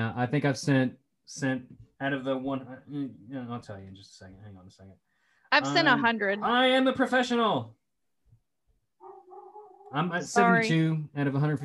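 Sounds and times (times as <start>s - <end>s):
speech: 0.1s - 7.8s, 9.9s - 11.6s
dog barking excitedly at a FedEx delivery: 9.0s - 10.0s.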